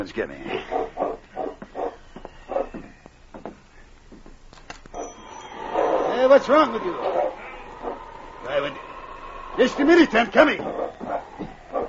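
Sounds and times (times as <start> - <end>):
speech: 0.0 - 0.9, 6.3 - 7.4, 9.6 - 11.0
dog barking: 0.6 - 2.9, 6.9 - 8.0, 10.6 - 11.8.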